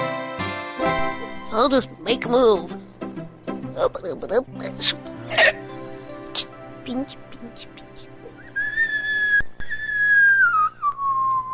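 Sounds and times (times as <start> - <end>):
speech: 1.5 - 2.9, 3.8 - 5.6, 6.4 - 8.1
person whistling during a chess game: 8.3 - 11.5.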